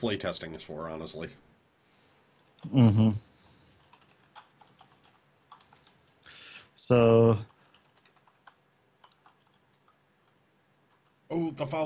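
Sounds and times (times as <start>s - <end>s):
speech: 0.0s - 1.5s, 2.6s - 3.3s, 6.9s - 7.5s, 11.3s - 11.8s
typing on a computer keyboard: 3.8s - 6.2s, 7.5s - 11.2s.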